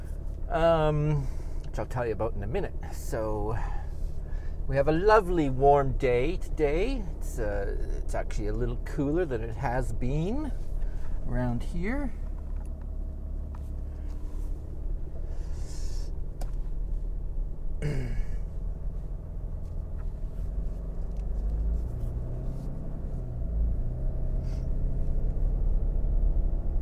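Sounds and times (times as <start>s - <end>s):
truck engine rumbling while pulling out of a driveway: 0.0s - 26.8s
speech: 0.5s - 3.8s, 4.7s - 12.2s, 17.8s - 18.2s.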